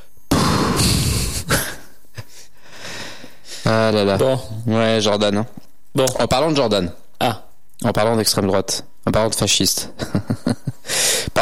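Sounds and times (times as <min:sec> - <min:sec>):
person blowing straight into a microphone: 0:00.3 - 0:01.8
speech: 0:03.7 - 0:11.3.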